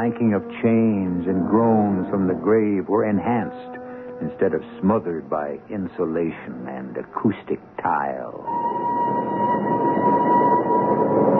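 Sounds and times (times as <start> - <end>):
arriving train whistle: 0.0 - 5.2, 8.4 - 11.3
speech: 0.0 - 8.7.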